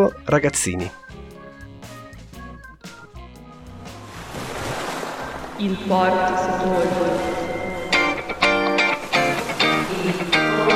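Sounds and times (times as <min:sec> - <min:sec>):
speech: 0:00.0 - 0:01.1, 0:05.6 - 0:07.4
soft tonal music: 0:00.0 - 0:10.7
sea waves washing onto the shore: 0:03.9 - 0:10.7.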